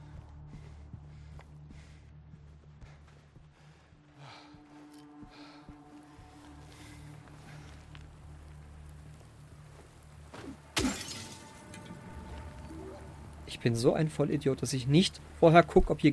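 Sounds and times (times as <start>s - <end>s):
scattering debris: 10.4s - 12.8s
glass window pane smashing in a video game: 10.8s - 11.9s
speech: 13.5s - 16.1s.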